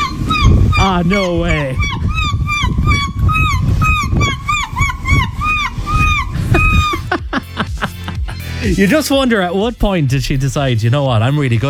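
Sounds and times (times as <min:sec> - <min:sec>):
woman imitating seagull calls: 0:00.0 - 0:07.6
speech: 0:00.9 - 0:01.8, 0:08.7 - 0:11.6
laughter: 0:06.4 - 0:09.1.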